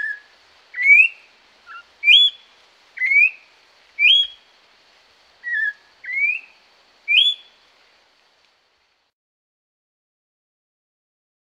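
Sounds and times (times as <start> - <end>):
orange-backed troupial song in the Pantanal: 0.0 - 4.5, 5.4 - 7.6.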